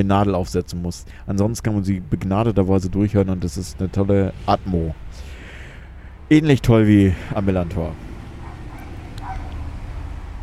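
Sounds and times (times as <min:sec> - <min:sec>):
speech: 0:00.0 - 0:05.4, 0:06.3 - 0:08.1
dogs barking: 0:08.2 - 0:09.9.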